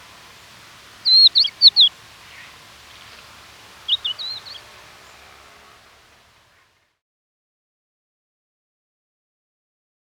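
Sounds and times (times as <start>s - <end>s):
crested lark giving high whistled calls: 0.9s - 5.2s.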